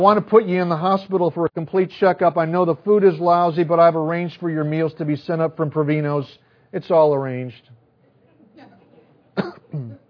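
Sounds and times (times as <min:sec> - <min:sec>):
speech: 0:00.0 - 0:07.8
single sharp cough: 0:09.4 - 0:10.0.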